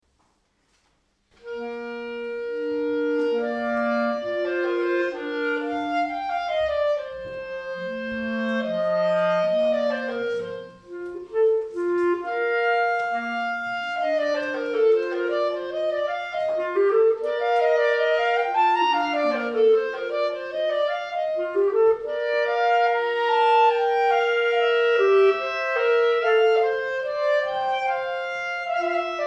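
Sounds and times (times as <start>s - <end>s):
clarinet duet: 1.3s - 29.2s.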